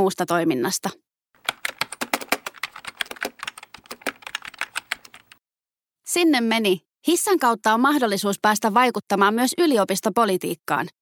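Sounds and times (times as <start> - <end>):
speech: 0.0 - 1.0, 6.1 - 10.9
typing on a computer keyboard: 1.4 - 5.4.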